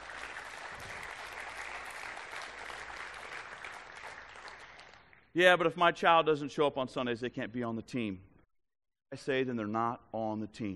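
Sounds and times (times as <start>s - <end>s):
church audience clapping: 0.0s - 5.3s
speech: 5.4s - 8.3s, 9.1s - 10.7s.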